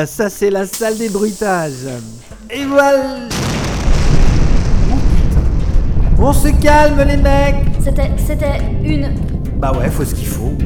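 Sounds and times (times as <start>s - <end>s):
speech: 0.0s - 3.6s, 6.2s - 10.6s
explosion sound effect of a pirate base blowing up: 3.3s - 8.2s.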